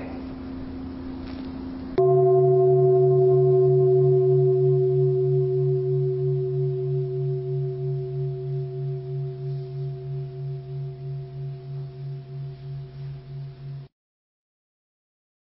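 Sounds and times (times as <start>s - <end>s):
deep temple bell strike ringing out: 2.0s - 13.9s.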